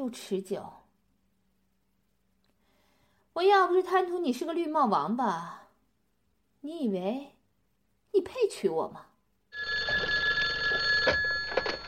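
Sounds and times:
speech: 0.0s - 0.8s, 3.4s - 5.6s, 6.6s - 7.3s, 8.1s - 9.1s
telephone ringing with bright electronic tone: 9.6s - 11.8s.

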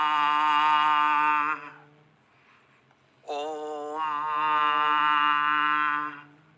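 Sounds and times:
person humming om chant on the exhale during chakra meditation: 0.0s - 2.2s, 3.2s - 6.5s
breath: 2.2s - 3.1s.

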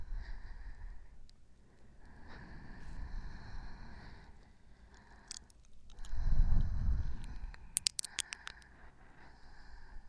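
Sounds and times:
slow breathing: 0.0s - 10.0s
scattered clicks: 7.2s - 8.7s.

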